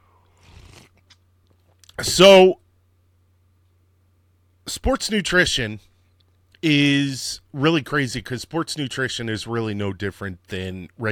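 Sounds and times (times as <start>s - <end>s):
steady low electrical hum: 0.0s - 11.0s
slurping sip of coffee: 0.4s - 1.0s
speech: 2.0s - 2.6s, 4.7s - 5.9s, 6.6s - 11.0s.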